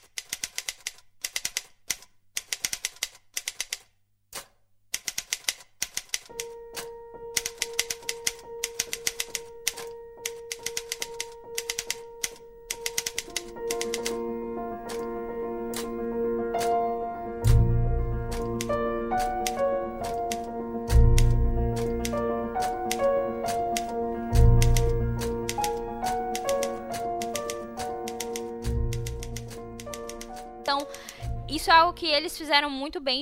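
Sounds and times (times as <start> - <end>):
typewriter keystrokes in a film score: 0.0 - 14.2, 14.8 - 15.1, 15.7 - 16.0, 16.6 - 16.8, 18.3 - 31.2
piano: 6.2 - 33.2
sustained orchestral tones: 13.1 - 32.6
speech: 32.0 - 33.2.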